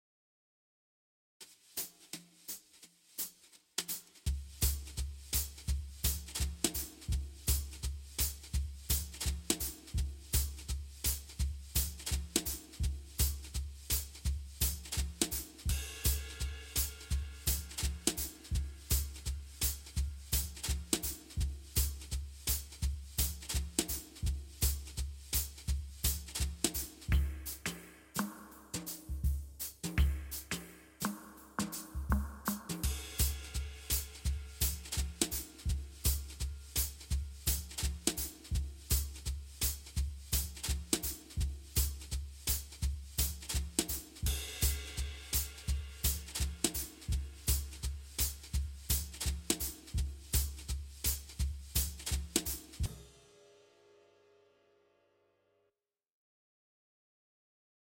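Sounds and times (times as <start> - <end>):
drums stems: 1.4 - 54.2.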